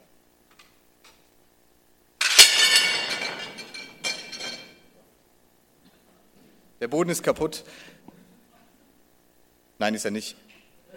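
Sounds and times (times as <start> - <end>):
broken plate shards clattering and clinking inside a bag: 2.2 - 4.8
speech: 6.8 - 8.0, 9.8 - 10.5.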